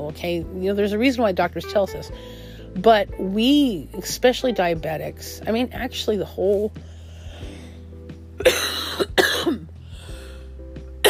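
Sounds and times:
speech: 0:00.0 - 0:06.9, 0:08.4 - 0:09.3
smoker's cough: 0:08.4 - 0:09.7.

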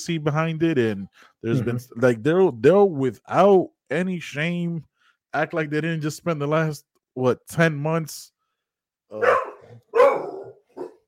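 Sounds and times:
speech: 0:00.0 - 0:08.3, 0:09.1 - 0:09.8
dog barking excitedly: 0:09.2 - 0:11.0.

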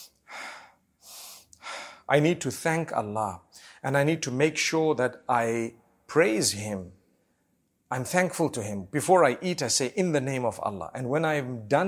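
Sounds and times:
person breathing in and out deliberately: 0:00.0 - 0:02.1, 0:03.5 - 0:03.8
speech: 0:02.1 - 0:07.0, 0:07.9 - 0:11.8.

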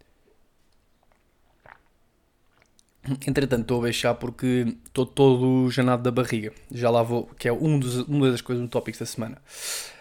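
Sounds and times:
person sipping tea: 0:00.6 - 0:03.0
speech: 0:03.1 - 0:09.9.

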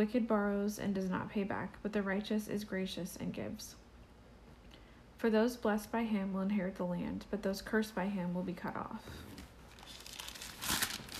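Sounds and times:
speech: 0:00.0 - 0:03.8, 0:05.2 - 0:09.4
book pages turning: 0:09.4 - 0:11.1.

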